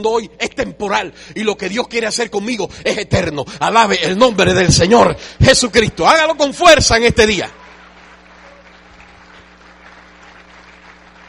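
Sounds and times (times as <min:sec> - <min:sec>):
speech: 0:00.0 - 0:07.6
crowd applauding: 0:07.4 - 0:11.2.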